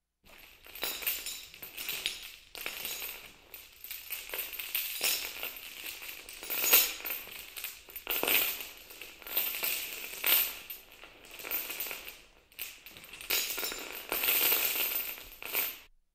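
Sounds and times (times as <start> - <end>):
chains rattling: 0.3 - 15.9.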